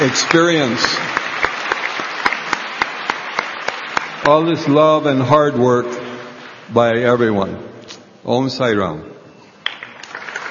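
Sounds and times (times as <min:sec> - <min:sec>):
speech: 0:00.0 - 0:01.1, 0:04.2 - 0:06.0, 0:06.7 - 0:09.1
audience applause: 0:00.0 - 0:05.3, 0:09.6 - 0:10.4.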